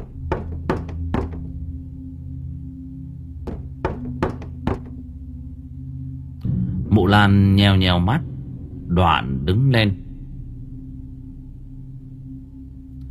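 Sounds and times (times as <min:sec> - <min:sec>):
steady low hum: 0:00.0 - 0:13.0
knocks on a door: 0:00.3 - 0:01.5, 0:03.5 - 0:04.9
speech: 0:07.0 - 0:08.3, 0:08.9 - 0:10.0.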